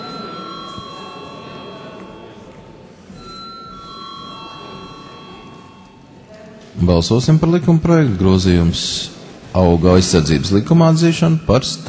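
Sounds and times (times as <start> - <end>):
electric bell rung in a parliament chamber before a vote: 0.0 - 6.2
low noise: 0.0 - 11.8
speech: 6.8 - 11.8.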